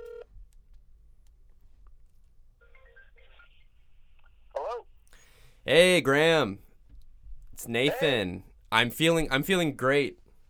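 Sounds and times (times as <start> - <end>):
low hum: 0.0 - 10.4
speech: 5.7 - 6.6, 7.6 - 10.2
electronic telephone dialing tones: 7.8 - 8.2.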